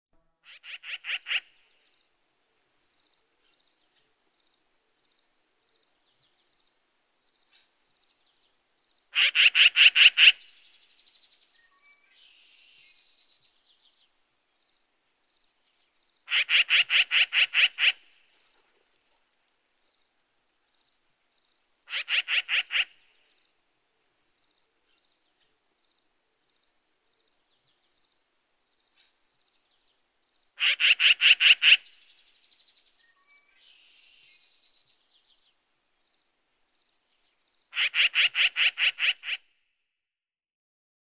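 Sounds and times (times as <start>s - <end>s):
black-billed magpie Pica hudsonia calling: 0.4s - 1.6s, 9.1s - 10.5s, 16.3s - 18.2s, 21.9s - 23.1s, 30.6s - 32.0s, 37.7s - 39.5s.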